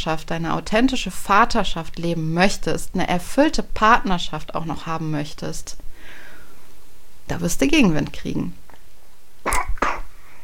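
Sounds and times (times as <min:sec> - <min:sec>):
speech: 0:00.0 - 0:06.2, 0:07.3 - 0:08.6
small child coughing: 0:09.4 - 0:10.4.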